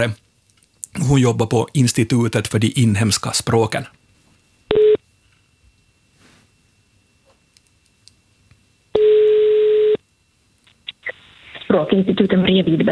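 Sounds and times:
speech: 0.0s - 0.2s, 1.0s - 4.0s, 11.8s - 12.9s
telephone ringing tones through a phone line: 4.7s - 5.0s, 8.9s - 10.0s.

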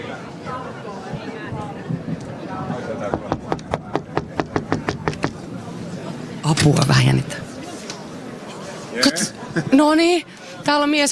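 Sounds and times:
chatter and murmuring voices: 0.0s - 11.0s
sharp knocks on a heavy red wooden door to a jury's room: 3.1s - 5.4s
speech: 6.5s - 7.5s, 9.0s - 11.0s.

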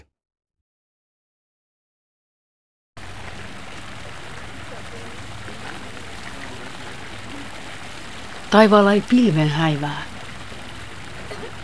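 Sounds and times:
fountain water splashing: 3.0s - 11.6s
speech: 8.5s - 10.1s.

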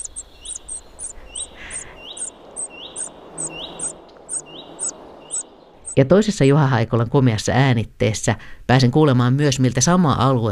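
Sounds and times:
common cuckoo chick begging in a common redstart nest: 0.0s - 6.0s
fainter rising whistles: 0.0s - 6.0s
speech: 6.0s - 10.4s.

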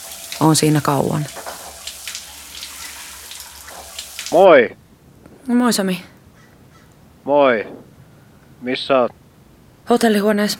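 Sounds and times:
shower water running in a hotel bathroom: 0.0s - 4.6s
speech: 0.4s - 1.4s, 4.3s - 4.8s, 5.5s - 6.1s, 7.2s - 7.9s, 8.6s - 9.2s, 9.9s - 10.5s.

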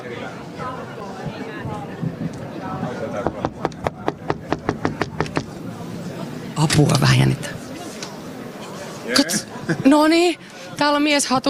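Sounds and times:
faint chatter: 0.0s - 11.4s
knocking on a heavy wooden door: 3.2s - 5.6s
speech: 6.6s - 7.6s, 9.1s - 11.4s
laughter: 9.1s - 10.4s.

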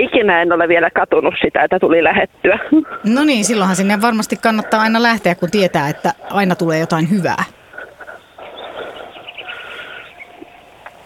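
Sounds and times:
speech: 0.0s - 7.6s
birds chirping and trilling outdoors: 3.0s - 11.0s.

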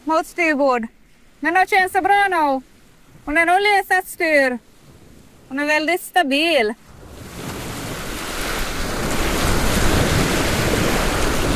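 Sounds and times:
speech: 0.1s - 4.7s, 5.5s - 6.8s
waves breaking and rushing past a sailboat at sea: 0.4s - 11.5s
gusty wind buffeting the microphone: 1.5s - 6.0s, 6.8s - 11.5s.

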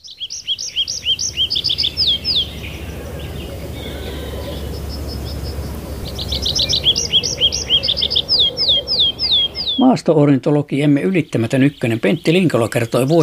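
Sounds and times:
tree pipit singing: 0.0s - 13.2s
low rumble of outdoor noise: 0.4s - 9.8s
speech: 9.8s - 13.2s.

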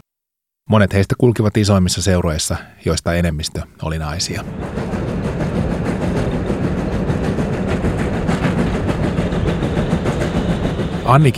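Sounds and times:
speech: 0.7s - 5.2s, 11.1s - 11.3s
train rumbling along the rails: 3.2s - 11.3s.

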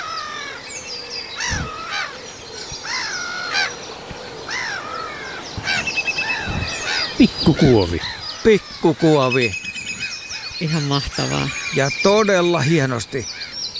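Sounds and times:
black-headed gull calling as it flies over: 1.4s - 11.8s
speech: 7.2s - 9.6s, 10.6s - 13.4s.

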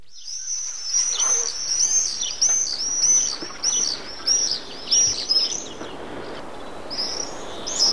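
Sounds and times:
open-air hiss: 0.0s - 7.9s
common swifts screaming: 0.3s - 7.9s.

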